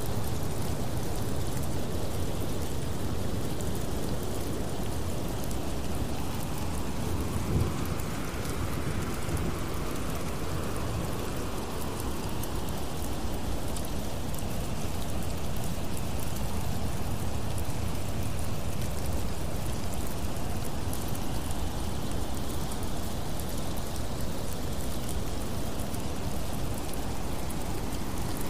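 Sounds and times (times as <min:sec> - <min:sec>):
heavy rain pouring down: 0:00.0 - 0:28.4.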